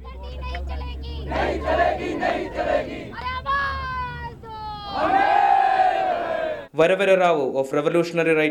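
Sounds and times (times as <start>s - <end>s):
large crowd of protesters shouting slogans in unison: 0.0s - 6.7s
speech: 6.8s - 8.4s.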